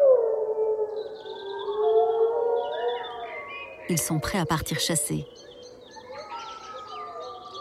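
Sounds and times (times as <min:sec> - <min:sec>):
pack of gray wolves howling in a forest: 0:00.0 - 0:03.9, 0:05.5 - 0:07.5
forest background: 0:00.0 - 0:07.5
speech: 0:03.9 - 0:05.5.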